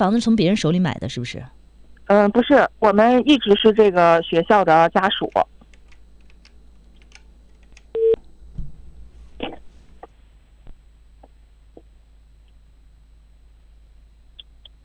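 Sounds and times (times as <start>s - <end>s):
speech: 0.0s - 5.5s
telephone busy tone: 8.0s - 8.2s.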